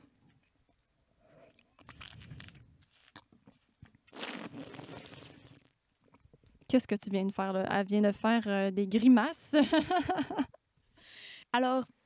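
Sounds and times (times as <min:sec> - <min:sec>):
airy slurp of wine: 0:01.2 - 0:03.3, 0:04.1 - 0:05.8
wine swished and chewed in the mouth during a wine tasting: 0:04.1 - 0:05.7
speech: 0:06.7 - 0:10.5, 0:11.6 - 0:12.0
laughter: 0:09.6 - 0:10.5.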